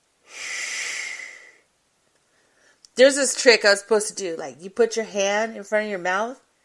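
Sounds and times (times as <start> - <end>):
labored inhalation through a congested nose: 0.2 - 1.7
speech: 3.0 - 6.4.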